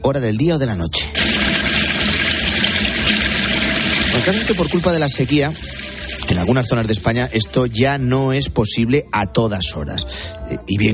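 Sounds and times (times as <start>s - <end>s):
speech: 0.0s - 2.0s, 4.2s - 10.9s
water running from an open tap: 1.2s - 8.0s.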